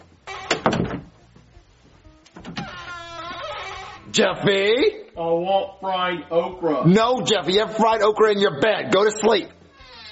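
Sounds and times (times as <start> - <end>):
door creaking and squeaking as it swings: 0.0 - 1.2, 2.2 - 4.2, 9.6 - 10.1
speech: 4.2 - 9.6.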